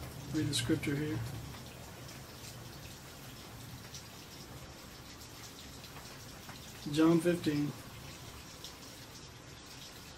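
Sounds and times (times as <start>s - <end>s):
rain falling: 0.0s - 10.1s
speech: 0.3s - 1.4s, 6.8s - 7.8s.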